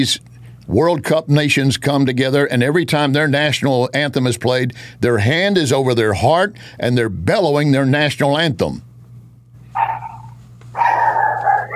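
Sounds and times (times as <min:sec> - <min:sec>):
speech: 0:00.0 - 0:08.9
low steady hum: 0:00.0 - 0:11.7
dog barking with a whining edge: 0:09.7 - 0:11.7.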